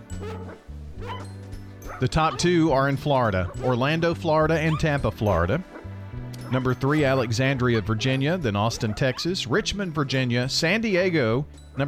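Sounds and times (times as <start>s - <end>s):
dog barking: 0.2s - 2.5s, 3.4s - 3.7s, 4.6s - 4.9s, 8.7s - 9.3s
speech: 0.2s - 5.7s, 6.5s - 11.8s.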